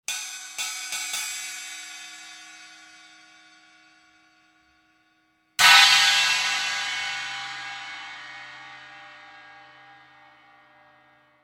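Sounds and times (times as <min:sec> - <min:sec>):
Sabian cymbal: 0:00.1 - 0:11.4.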